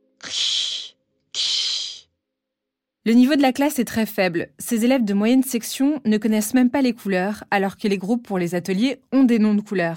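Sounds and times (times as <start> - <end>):
person spitting and hissing in imitation of an aggressive kitten: 0.2 - 2.1
speech: 0.3 - 0.5, 3.1 - 9.9.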